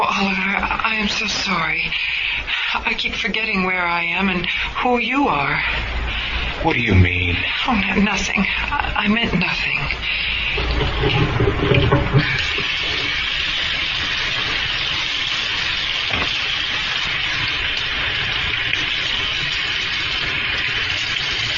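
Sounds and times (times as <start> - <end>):
speech: 0.0 - 12.4
steady hiss of running water: 0.0 - 21.5
water splashing as a cloth is dampened: 6.1 - 21.5.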